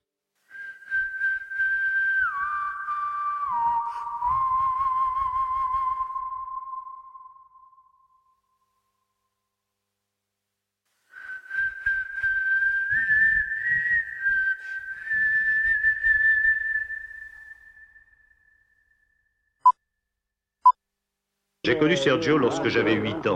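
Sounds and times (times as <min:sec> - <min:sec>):
whistled melody from a film soundtrack: 0:00.5 - 0:08.8, 0:11.1 - 0:19.6
speech: 0:21.7 - 0:23.3.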